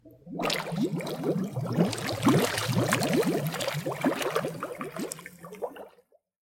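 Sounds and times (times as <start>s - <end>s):
surface bubbles: 0.0s - 6.0s.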